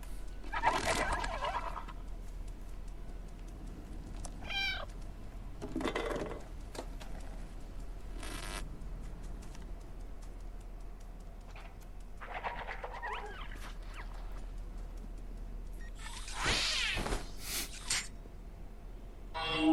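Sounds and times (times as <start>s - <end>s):
low hum: 0.0s - 19.7s
cat meows played as a button-triggered sound effect: 4.4s - 4.9s.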